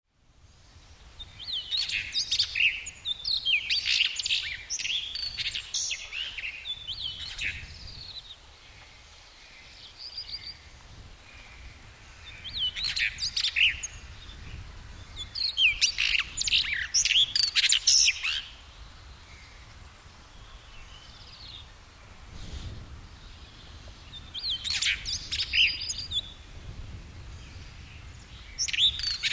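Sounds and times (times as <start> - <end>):
blue rock thrush singing: 0.6 - 21.7, 23.2 - 26.4, 27.2 - 29.3.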